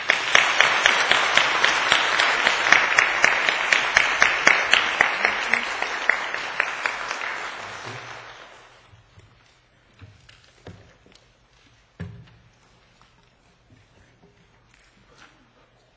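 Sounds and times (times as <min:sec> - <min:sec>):
audience applauding to welcome a preacher: 0:00.0 - 0:08.9.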